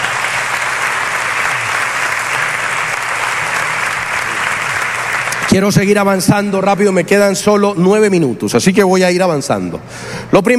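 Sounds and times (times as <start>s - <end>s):
large audience clapping steadily: 0.0s - 6.3s
speech: 5.5s - 10.5s.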